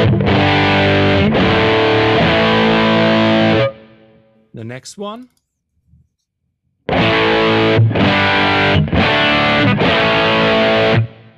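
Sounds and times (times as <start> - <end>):
heavily distorted electric guitar chords through amp profile: 0.0 - 4.4, 6.9 - 11.3
speech: 4.7 - 5.4.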